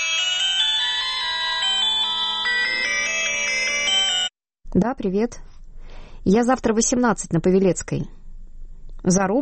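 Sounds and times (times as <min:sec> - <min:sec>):
mobile phone ringing with electronic melody: 0:00.0 - 0:04.3
speech: 0:04.8 - 0:05.5, 0:06.2 - 0:08.2, 0:09.0 - 0:09.4.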